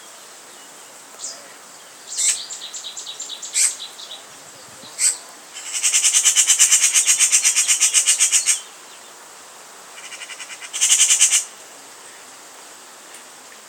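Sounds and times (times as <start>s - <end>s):
Eurasian magpie Pica pica rattling chatter: 5.0s - 8.6s, 10.0s - 11.5s.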